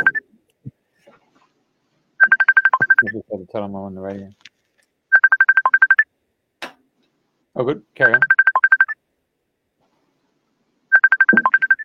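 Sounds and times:
mobile phone ringing with short electronic beeping tones: 0.0 - 0.2, 2.2 - 3.1, 5.1 - 6.0, 8.0 - 9.0, 10.9 - 11.8
speech: 3.1 - 4.4, 7.6 - 8.4.

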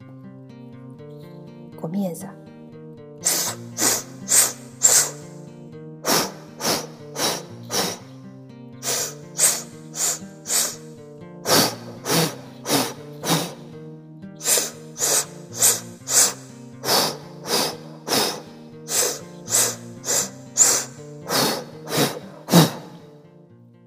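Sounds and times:
speech: 1.8 - 2.4
sharp forceful breaths during a breathing exercise: 3.2 - 8.2, 8.8 - 13.8, 14.4 - 23.2.

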